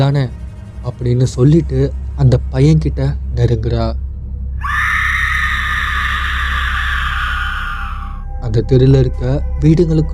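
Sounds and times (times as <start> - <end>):
speech: 0.0 - 4.0, 8.5 - 10.1
person screaming in a street outside houses: 4.6 - 8.2.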